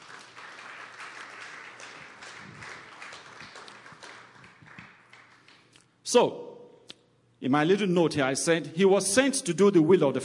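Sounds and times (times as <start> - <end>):
church audience applauding: 0.0 - 5.8
speech: 6.1 - 6.4, 7.4 - 10.2.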